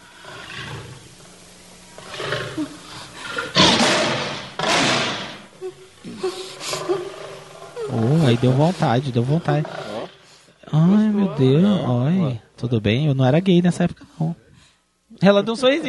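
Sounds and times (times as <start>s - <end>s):
lion roaring: 0.1s - 1.2s, 2.0s - 5.4s, 6.6s - 10.3s
speech: 8.3s - 9.8s, 10.8s - 14.4s, 15.2s - 15.8s.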